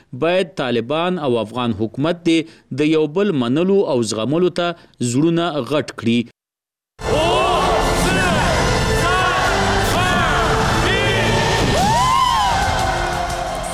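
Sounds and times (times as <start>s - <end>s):
speech: 0.1s - 6.3s
crowd shouting and cheering in Beijing to welcome New Year 2019: 7.0s - 13.7s.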